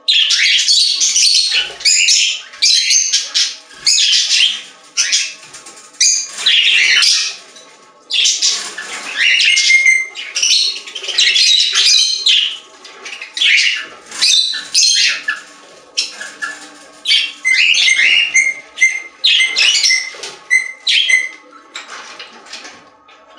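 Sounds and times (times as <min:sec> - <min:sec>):
budgerigar warbling and squawking: 0:00.1 - 0:05.4, 0:08.1 - 0:21.5.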